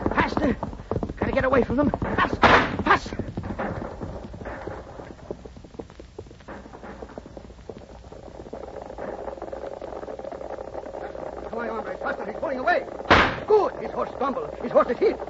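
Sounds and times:
horse carrying a fleeing rider galloping hard: 0.0s - 15.2s
speech: 0.4s - 3.7s, 14.2s - 15.2s
sharp thud: 2.0s - 3.8s, 13.1s - 13.6s.

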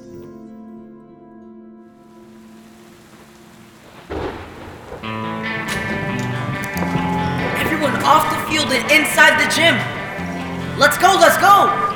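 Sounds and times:
sustained musical tones: 2.0s - 11.9s
heavy rain hissing in a thunderstorm: 2.2s - 11.9s
loud crack of thunder rumbling: 2.7s - 10.8s
speech: 8.1s - 9.9s, 10.8s - 11.8s.

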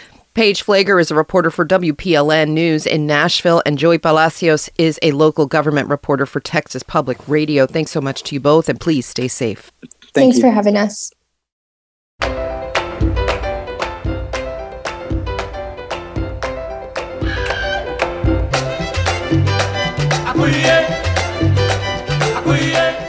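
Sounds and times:
speech: 0.4s - 11.2s
1970s New York salsa music recording with a full band: 12.2s - 23.0s
driving bass line: 12.2s - 23.0s
sharp accented percussive hits: 12.2s - 23.0s.

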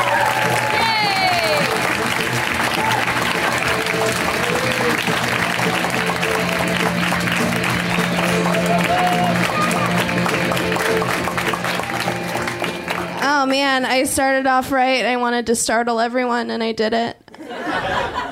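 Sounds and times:
cheers and whoops from the crowd: 0.0s - 6.6s, 8.2s - 11.0s, 11.6s - 12.4s
large audience clapping to welcome a guest: 0.0s - 14.0s
speech: 14.0s - 17.2s
laughter: 17.3s - 18.3s.

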